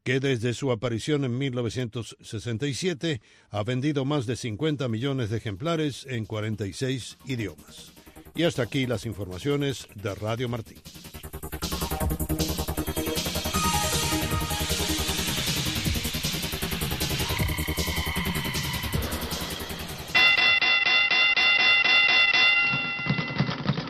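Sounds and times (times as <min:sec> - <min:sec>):
speech: 0:00.0 - 0:11.2
busy dense music: 0:06.4 - 0:20.2
small bell ringing: 0:20.2 - 0:23.6.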